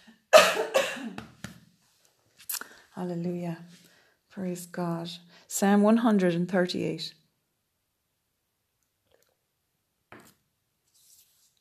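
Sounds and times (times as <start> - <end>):
person clearing throat with raspy coughs: 0.4 - 1.2
speech: 3.0 - 3.8, 4.4 - 7.2.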